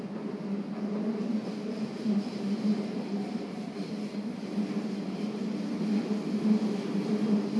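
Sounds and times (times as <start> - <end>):
subway train running heard from inside carriage: 0.0 - 7.5.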